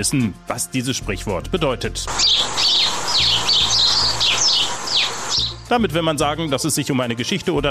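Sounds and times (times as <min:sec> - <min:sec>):
speech: 0:00.0 - 0:02.8, 0:05.7 - 0:07.6
sparrows chirping: 0:02.1 - 0:05.7.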